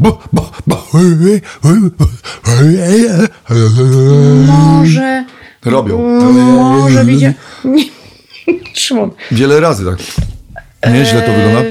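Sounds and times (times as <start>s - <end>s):
person imitating a dog's yawn with whiny vocal glides: 0.0s - 4.9s
speech: 0.0s - 7.9s, 8.5s - 11.6s.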